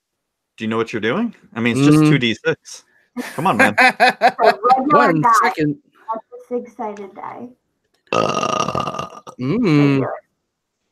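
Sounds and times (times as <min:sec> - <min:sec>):
speech: 0:00.6 - 0:08.8, 0:09.4 - 0:10.2
laughter: 0:03.2 - 0:05.5
loud rough rumbling burp: 0:08.1 - 0:10.0.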